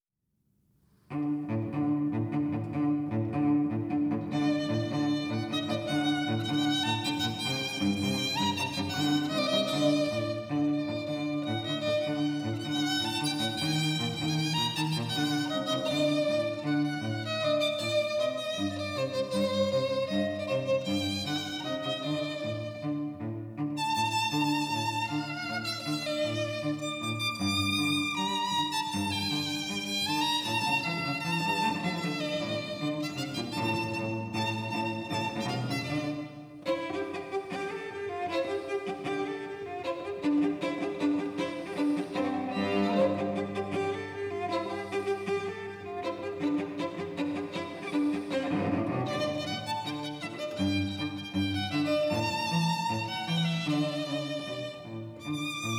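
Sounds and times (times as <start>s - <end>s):
cello playing traditional Jewish dance music: 0.9s - 55.7s
violin playing traditional Jewish dance music: 1.0s - 55.7s.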